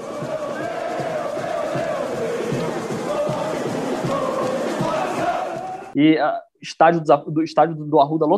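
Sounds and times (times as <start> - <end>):
football fans cheering and chanting in the street: 0.0 - 6.0
speech: 6.0 - 8.3.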